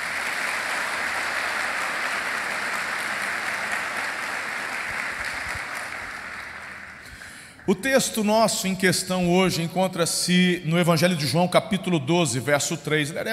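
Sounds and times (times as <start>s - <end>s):
church audience applauding after a prayer: 0.0s - 7.8s
speech: 7.7s - 13.3s.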